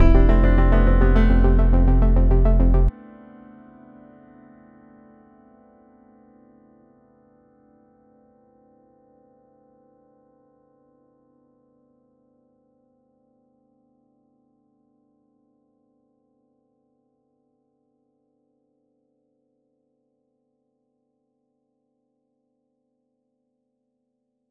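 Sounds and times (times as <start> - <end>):
piano pattern on break slice for reversal: 0.0 - 4.2.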